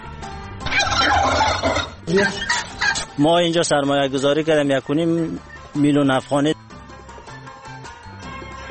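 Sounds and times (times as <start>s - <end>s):
turkeys gobbling on a turkey breeding farm in Takhar Afghanistan: 0.6s - 3.2s
speech: 2.1s - 2.6s, 3.2s - 6.5s.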